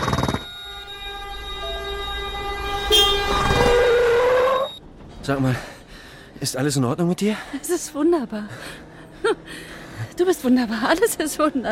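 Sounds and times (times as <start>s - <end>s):
train horn blaring in a multi-tone blast: 0.6s - 4.8s
speech: 5.3s - 5.7s, 6.4s - 9.5s, 10.2s - 11.6s.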